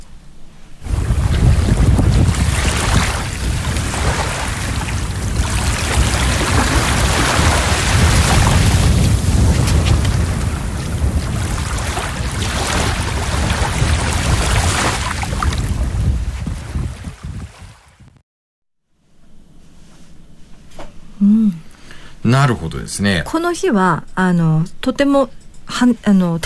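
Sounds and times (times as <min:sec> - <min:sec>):
ocean waves washing onto the shore: 0:00.8 - 0:18.0
heavy wind buffeting the microphone: 0:00.8 - 0:18.2
speech: 0:22.4 - 0:26.4.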